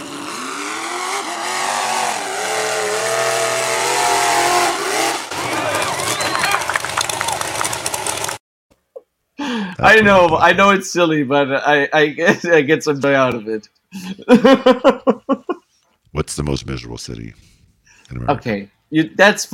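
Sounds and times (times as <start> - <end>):
truck engine revving: 0.0 - 8.4
speech: 9.8 - 15.4, 16.2 - 19.5
laughter: 14.0 - 15.6.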